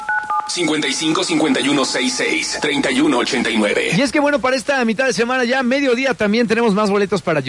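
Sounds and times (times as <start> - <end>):
telephone keypad tones dialing a number: 0.0 - 1.7
speech: 0.5 - 7.4.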